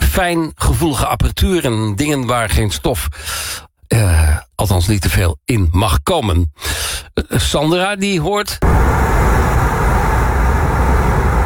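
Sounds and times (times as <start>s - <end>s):
speech: 0.2s - 9.4s
broadband road roar from a car cruising on a French motorway: 8.6s - 11.4s
wind rush through slightly open car window: 8.6s - 11.4s.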